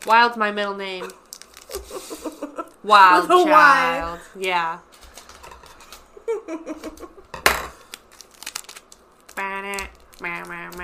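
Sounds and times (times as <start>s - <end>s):
speech: 0.0s - 5.0s, 6.4s - 7.2s, 9.4s - 10.8s
adhesive tape peeling and crinkling to seal the top of a bong: 1.0s - 2.0s, 7.8s - 10.8s
adhesive tape tearing rip: 7.8s - 10.8s.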